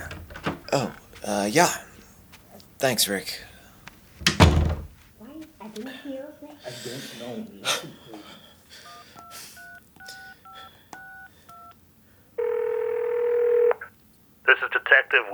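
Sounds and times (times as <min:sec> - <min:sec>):
speech: 0:00.7 - 0:01.9, 0:02.8 - 0:03.5, 0:05.8 - 0:08.5, 0:14.6 - 0:15.3
touch-tone beeps of a phone number being dialed: 0:08.8 - 0:11.8, 0:12.4 - 0:13.9.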